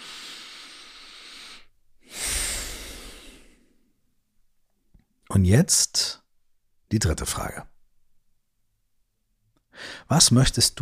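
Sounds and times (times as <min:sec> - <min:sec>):
deep breath in and out during a guided eyes-closed exercise: 0:00.0 - 0:04.0, 0:09.7 - 0:10.1
speech: 0:05.4 - 0:06.2, 0:06.9 - 0:07.7, 0:09.8 - 0:10.8.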